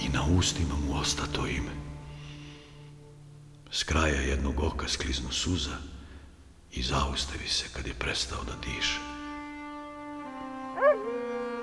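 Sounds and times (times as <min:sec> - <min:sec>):
speech: 0:00.2 - 0:01.8, 0:03.7 - 0:05.9, 0:06.7 - 0:09.1
dog howling: 0:10.7 - 0:11.6.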